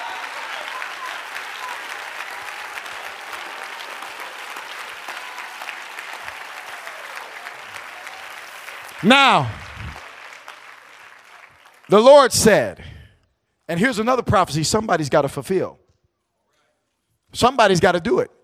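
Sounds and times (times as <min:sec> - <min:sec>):
audience clapping hands: 0:00.0 - 0:12.6
speech: 0:09.0 - 0:09.6, 0:11.9 - 0:12.9, 0:13.7 - 0:15.8, 0:17.3 - 0:18.4.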